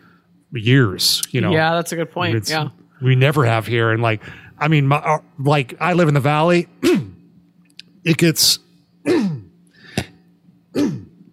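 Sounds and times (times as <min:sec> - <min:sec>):
speech: 0:00.5 - 0:07.1, 0:08.0 - 0:09.3
person clearing throat with a protein bar stuck in it: 0:06.8 - 0:07.2, 0:09.0 - 0:11.3.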